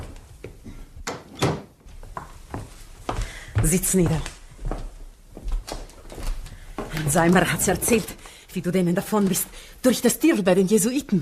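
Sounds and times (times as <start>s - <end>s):
door being closed: 1.0s - 1.8s
speech: 3.6s - 4.3s, 7.0s - 11.2s.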